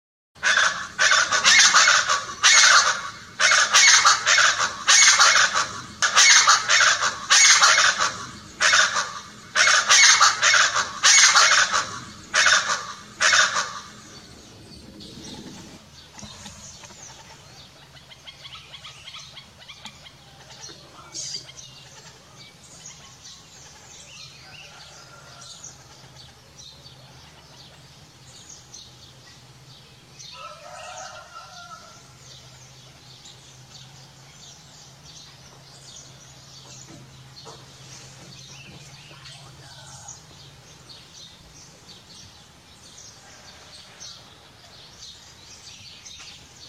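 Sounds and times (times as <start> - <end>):
scaled chachalaca calling: 0.4 - 28.2, 38.7 - 41.2.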